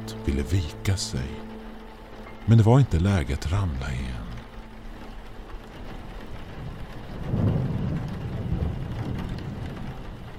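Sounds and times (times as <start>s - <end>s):
steady hiss of rain: 0.0s - 10.3s
speech: 0.3s - 1.5s, 2.4s - 4.2s
low rolling rumble of thunder: 5.6s - 10.3s.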